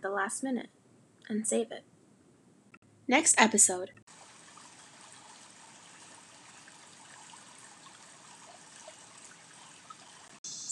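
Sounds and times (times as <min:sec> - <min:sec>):
speech: 0:00.1 - 0:01.9, 0:03.1 - 0:04.2
water trickling from a pot: 0:04.1 - 0:10.4.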